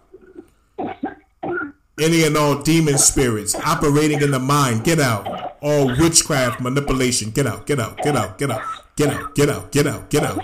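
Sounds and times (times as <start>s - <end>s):
person coughing into a cup: 0.8s - 1.8s
speech: 2.0s - 10.4s.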